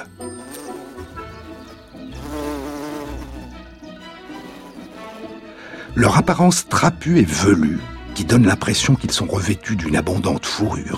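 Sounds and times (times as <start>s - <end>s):
bumblebee buzzing in flight: 0.2s - 5.6s
speech: 6.0s - 10.9s.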